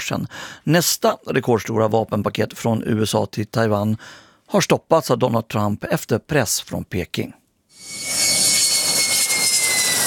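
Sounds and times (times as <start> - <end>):
speech: 0.0 - 8.2
thin high whine: 7.7 - 10.0
jet-engine roar from F-16V fighter jets landing at a military base in Taitung, Taiwan: 7.8 - 10.0.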